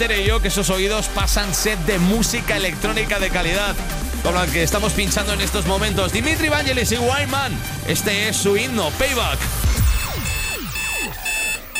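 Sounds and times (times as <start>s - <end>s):
speech: 0.0s - 9.6s
sustained high whine: 0.0s - 11.7s
alarm clock ringing with a falling sweeping electronic tone: 9.2s - 11.7s.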